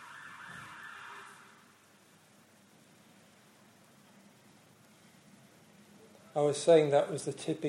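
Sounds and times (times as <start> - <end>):
ambulance siren wailing: 0.0 - 1.6
speech: 6.4 - 7.6.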